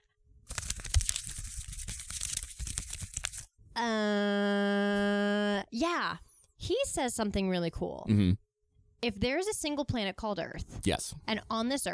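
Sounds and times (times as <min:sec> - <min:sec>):
paper being handled and crinkled: 0:00.5 - 0:03.5
speech: 0:03.8 - 0:04.6, 0:05.7 - 0:08.4, 0:09.0 - 0:11.9.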